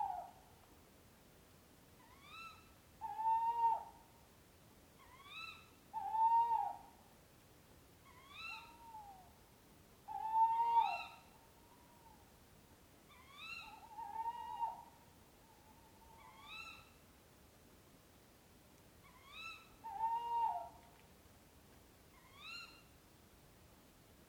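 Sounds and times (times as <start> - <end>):
owl giving hoarse harmonic hoots: 0.0 - 0.4, 2.0 - 4.1, 5.0 - 7.0, 8.0 - 9.3, 10.1 - 12.2, 13.1 - 17.0, 19.0 - 20.8, 22.1 - 22.9
low background hiss: 0.0 - 24.2.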